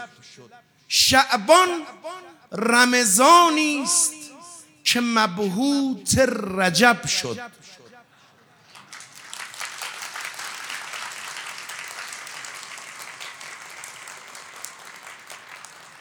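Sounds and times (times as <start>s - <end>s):
speech: 0.0s - 4.2s, 4.9s - 7.8s
crowd applauding with many hands clapping: 8.7s - 15.9s.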